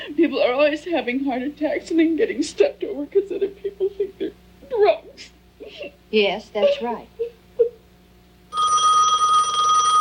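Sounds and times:
speech: 0.1 - 7.3
telephone bell ringing with a metallic trill: 8.5 - 10.0.

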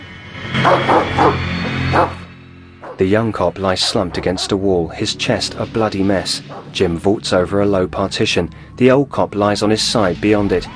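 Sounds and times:
speech: 0.6 - 2.2, 3.0 - 10.7
dog yipping: 0.7 - 1.4, 2.0 - 2.2.

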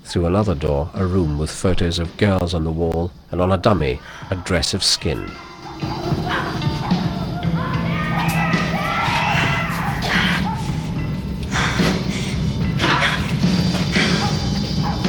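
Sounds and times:
speech: 0.1 - 6.6
people crying and yelling: 3.3 - 15.0
dogs yelping in a cellar: 4.0 - 15.0.

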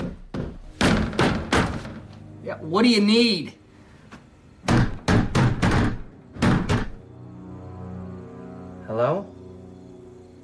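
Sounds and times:
hand slamming against a closed door: 0.0 - 2.0, 4.7 - 7.0
speech: 2.5 - 3.6.

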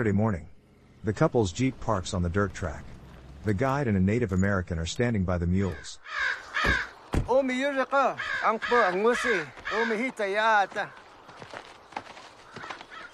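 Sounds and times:
speech: 0.0 - 11.6
crow cawing in harsh rasping calls: 5.7 - 7.1, 7.9 - 13.1.

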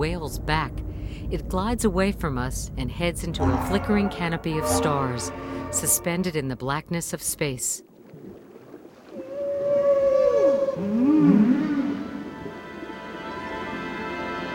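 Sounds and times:
speech: 0.0 - 8.3, 10.8 - 11.5
whales calling: 3.3 - 6.5, 8.3 - 14.3.

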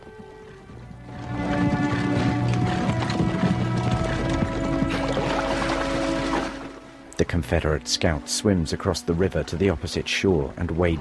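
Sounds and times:
troop of horses trotting single file along a narrow woodland path: 0.0 - 6.8
speech: 7.2 - 10.9.

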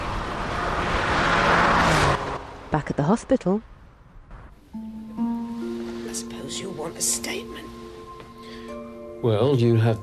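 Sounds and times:
silver car zooming down a motorway: 0.0 - 3.3
speech: 2.8 - 3.7, 7.0 - 7.7, 9.2 - 10.0.

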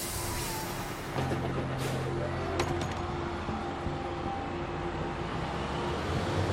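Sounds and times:
bus door closing: 0.0 - 3.1
bus pulling away with engine rumble: 0.0 - 6.5.

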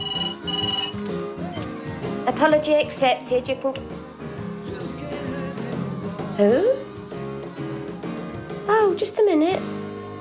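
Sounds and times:
electronic telephone ringing in a kitchen: 0.0 - 1.2
speech: 2.3 - 4.0, 6.4 - 6.8, 9.0 - 9.8.

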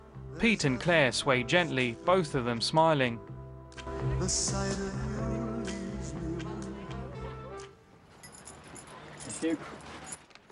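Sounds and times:
speech: 0.4 - 5.0, 9.4 - 9.8
keys jangling as they are handed over: 8.1 - 10.5.

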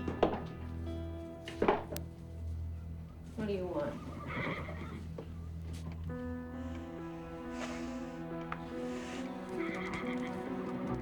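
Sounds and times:
horse hooves shuffling in a stable: 0.0 - 11.0
horse whinnying in a stable: 3.9 - 5.1, 9.2 - 10.8
low rumbling horse nicker: 6.8 - 10.6.

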